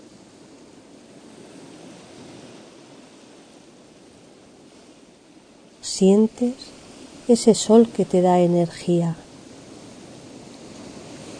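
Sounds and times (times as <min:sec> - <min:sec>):
ocean waves breaking on the shore: 0:00.0 - 0:11.3
speech: 0:05.9 - 0:06.7, 0:07.3 - 0:09.3.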